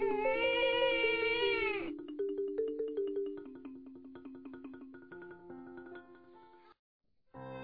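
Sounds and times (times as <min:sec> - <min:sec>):
young child bursting into a loud wailing cry: 0:00.0 - 0:01.9
gentle plinking music: 0:01.9 - 0:06.7.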